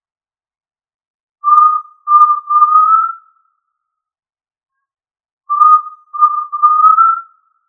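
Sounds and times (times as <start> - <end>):
tinamou whistled call: 1.5 - 3.2, 5.5 - 7.3.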